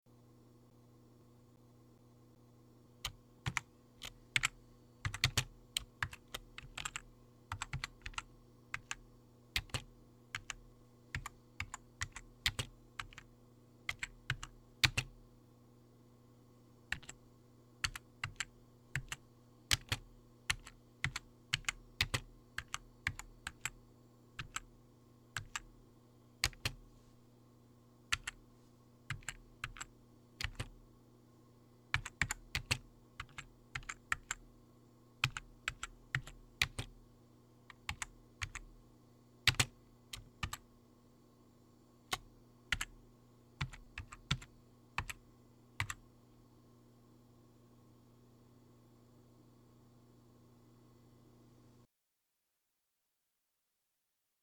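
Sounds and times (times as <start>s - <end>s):
hunt and peck keyboard typing: 3.0s - 9.0s, 9.6s - 13.3s, 13.9s - 15.2s, 16.9s - 17.2s, 17.8s - 23.8s, 24.4s - 24.7s, 25.4s - 25.7s, 26.4s - 26.8s, 28.1s - 28.4s, 29.1s - 30.8s, 31.9s - 34.5s, 35.2s - 37.0s, 37.7s - 38.7s, 39.5s - 40.6s, 42.1s - 43.0s, 43.6s - 45.2s, 45.8s - 46.0s.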